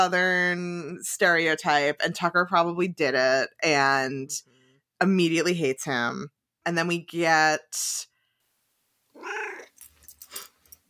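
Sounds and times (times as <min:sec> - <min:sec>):
speech: 0:00.0 - 0:08.1, 0:09.2 - 0:09.7
cat yowling: 0:09.2 - 0:09.8.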